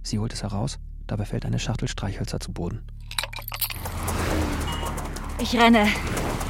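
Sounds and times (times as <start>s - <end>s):
speech: 0.1s - 3.9s, 5.4s - 6.4s
metallic jingle: 3.0s - 5.8s
car passing by: 3.6s - 6.4s.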